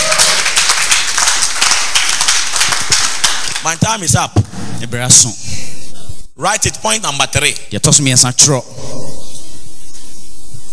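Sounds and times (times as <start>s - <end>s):
audience applauding: 0.0s - 3.8s
speech: 3.6s - 5.6s, 6.4s - 9.0s.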